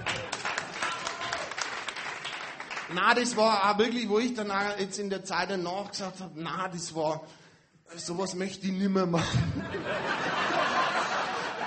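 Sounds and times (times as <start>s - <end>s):
audience applause: 0.0s - 3.0s
speech: 2.9s - 11.0s
laughter: 9.2s - 11.6s.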